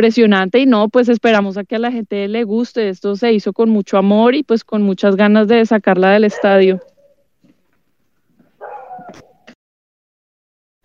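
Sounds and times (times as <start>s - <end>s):
speech: 0.0s - 6.9s
pet dog barking: 6.2s - 7.2s, 8.6s - 9.5s.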